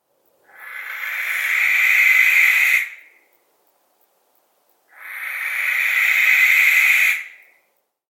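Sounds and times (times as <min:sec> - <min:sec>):
barn owl giving harsh hissing screeches: 0:00.4 - 0:03.1, 0:04.9 - 0:07.5.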